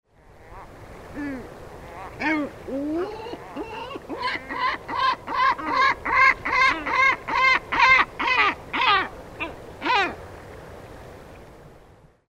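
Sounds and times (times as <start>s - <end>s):
great black-backed gull calling: 0.4s - 10.2s.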